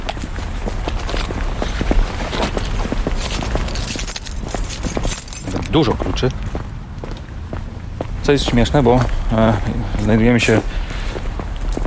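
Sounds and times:
footsteps walking on a stone pavement in a green alley: 0.0 - 11.8
speech: 5.7 - 6.7, 8.2 - 10.8.

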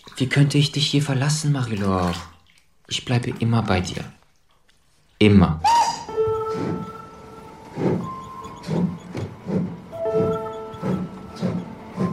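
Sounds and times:
speech: 0.2 - 2.3, 2.9 - 4.2, 5.2 - 5.7
sustained whining tones of a travelling train: 5.8 - 12.1
travelling train wheels clattering: 7.6 - 12.1.

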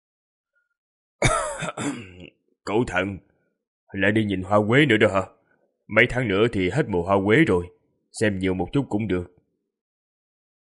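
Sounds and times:
dry hacking cough from another room of a small mud-walled house: 1.2 - 2.3
speech: 1.2 - 3.3, 3.9 - 9.4.

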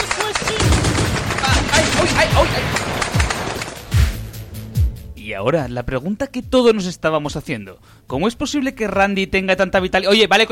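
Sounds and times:
shotgun firing in a comedy sketch: 0.0 - 4.2
speech: 5.4 - 10.5.

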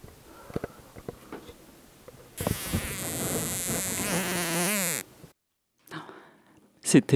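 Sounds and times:
faint ticks: 0.0 - 5.3
housefly buzzing as it struggles, caught by a tiny spider in a bedroom: 0.0 - 5.3.

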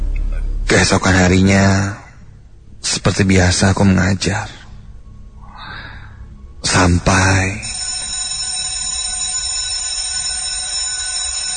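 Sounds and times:
speech: 0.8 - 2.0, 2.8 - 4.6, 6.7 - 7.6
electronic school bell ringing for home time: 7.6 - 11.5.

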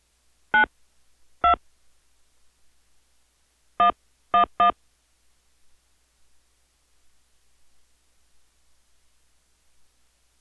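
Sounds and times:
telephone keypad tones entering a zip code into a phone menu: 3.8 - 4.7.

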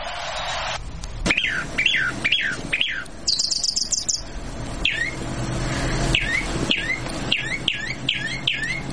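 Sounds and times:
low background rumble: 0.8 - 8.9
chalk-browed mockingbird song: 1.3 - 5.2, 6.1 - 8.9.

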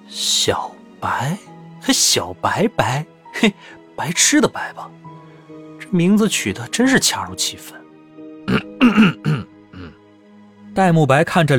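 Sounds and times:
speech: 0.1 - 5.2, 5.9 - 7.8, 8.5 - 9.5, 10.8 - 11.5
young man clearing throat and coughing: 8.5 - 10.0.

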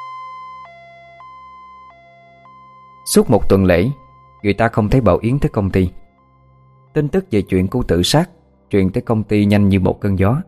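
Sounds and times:
two-tone ambulance siren in an upscale villa neighborhood at night: 0.0 - 10.4
speech: 3.1 - 6.0, 6.9 - 10.4.

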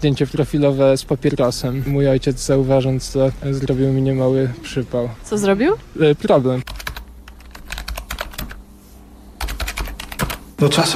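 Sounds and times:
speech: 0.0 - 6.9, 10.6 - 10.9
old man typing on a computer keyboard: 6.7 - 8.6, 9.4 - 10.4.

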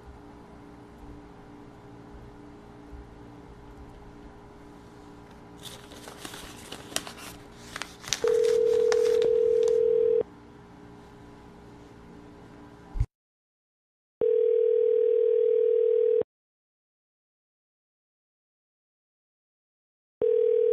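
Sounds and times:
telephone dial tone: 8.2 - 10.2, 14.2 - 16.2, 20.2 - 20.7.

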